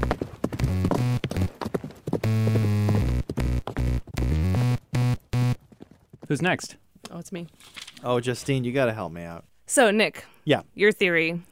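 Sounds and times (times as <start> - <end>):
horse hooves clip-clopping: 0.0 - 6.7
speech: 6.3 - 11.4.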